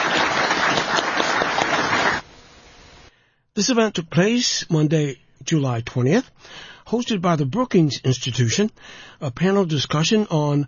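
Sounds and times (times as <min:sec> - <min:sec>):
audience clapping at the close of a panel discussion event: 0:00.0 - 0:02.3
speech: 0:03.6 - 0:10.6.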